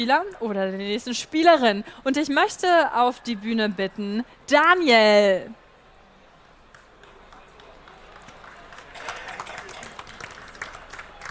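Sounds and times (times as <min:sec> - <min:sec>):
speech: 0:00.0 - 0:05.6
audience applauding with many hands clapping: 0:06.7 - 0:11.2.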